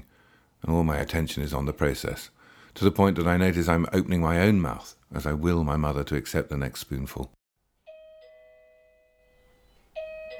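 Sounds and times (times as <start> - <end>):
speech: 0.6 - 7.4
doorbell two-note chime: 7.8 - 10.3.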